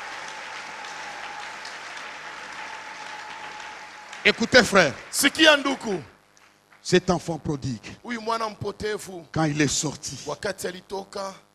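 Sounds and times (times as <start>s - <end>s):
church congregation applauding during a service: 0.0s - 7.0s
speech: 4.2s - 6.1s, 6.8s - 11.5s.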